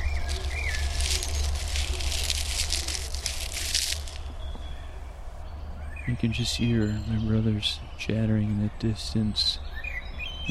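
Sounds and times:
hands crinkling dry leaves: 0.0 - 5.0
speech: 6.1 - 9.7.

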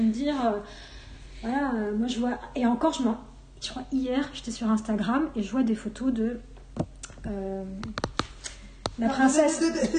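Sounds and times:
speech: 0.0 - 8.1, 9.0 - 9.9
fingertips tapping on a smartphone screen: 7.8 - 9.0.

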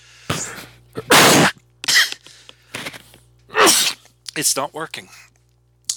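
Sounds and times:
person sneezing: 0.3 - 2.2, 3.5 - 4.0
speech: 4.4 - 5.3.

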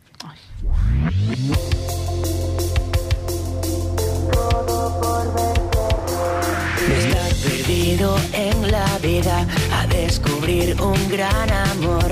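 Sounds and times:
rising synth swell in pop song intro: 0.5 - 7.6
sustained bass: 0.5 - 12.1
bright chords: 1.3 - 8.6
steady punchy drum beat: 1.5 - 12.1
speech: 9.1 - 12.1.

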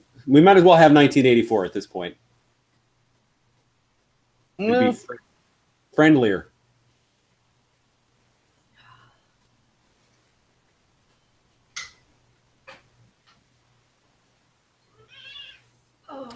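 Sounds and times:
speech: 0.2 - 2.3, 4.6 - 5.3, 6.0 - 6.5
cat meowing: 15.0 - 15.7.

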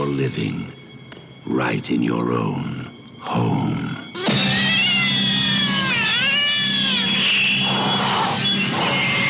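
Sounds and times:
speech: 0.2 - 0.8, 1.4 - 4.0
cat yowling and caterwauling: 4.1 - 9.2.

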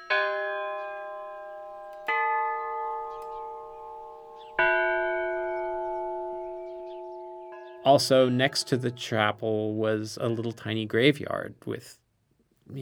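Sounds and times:
small chapel bell rung by pulling chain: 0.0 - 9.2
speech: 7.8 - 12.0.

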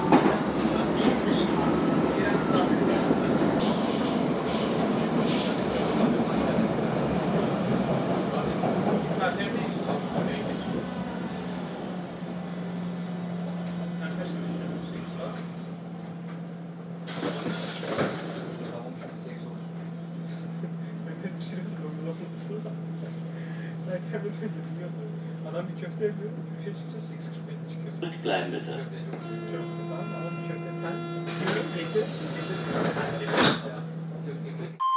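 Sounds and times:
train rumbling and rattling: 0.0 - 34.8
air brakes or doors hissing: 17.0 - 18.9, 31.3 - 33.3.

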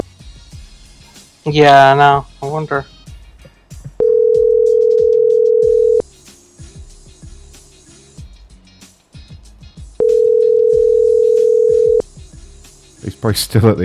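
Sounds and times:
speech: 1.4 - 2.9, 13.2 - 13.8
ringback tone of an unanswered outgoing telephone call: 4.0 - 6.0, 10.0 - 12.0.

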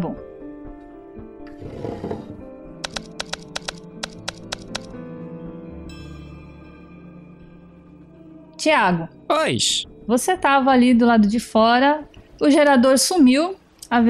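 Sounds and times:
mechanical typewriter key strikes: 2.8 - 4.9
speech: 8.6 - 14.0.

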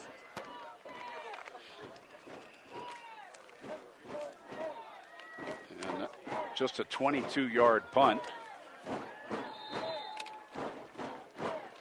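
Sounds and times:
fans stomping on stadium stands: 0.4 - 11.7
speech: 6.6 - 9.0.

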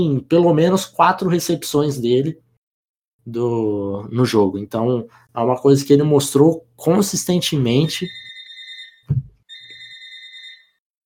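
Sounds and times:
speech: 0.0 - 2.4, 3.2 - 8.3
telephone ringing in electronic bursts of high tones: 8.0 - 10.8
thud-like knock: 9.1 - 9.4.

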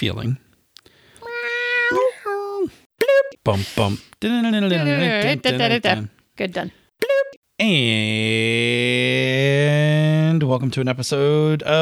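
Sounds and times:
speech: 0.0 - 0.5, 3.4 - 11.7
human voices imitating drawn-out nasal cat meows: 1.2 - 2.8.

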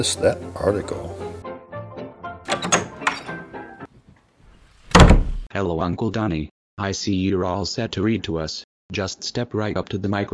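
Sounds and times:
speech: 0.0 - 1.3, 5.6 - 10.3
door opening and closing: 2.4 - 5.5
latch and frame rattling: 2.5 - 3.4, 4.9 - 5.4.

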